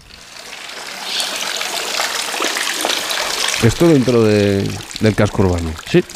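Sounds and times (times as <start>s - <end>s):
water trickling and splashing in a town centre fountain: 0.0s - 6.1s
speech: 3.6s - 6.1s.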